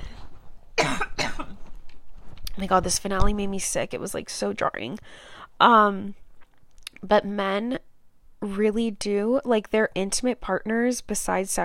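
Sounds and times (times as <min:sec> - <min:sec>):
harsh coughs: 0:00.8 - 0:01.6
speech: 0:02.6 - 0:06.2, 0:07.0 - 0:11.6.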